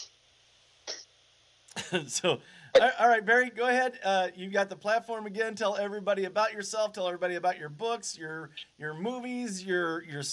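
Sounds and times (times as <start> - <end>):
person coughing: 1.7 - 3.0
laughter: 1.8 - 2.4
speech: 1.9 - 10.3.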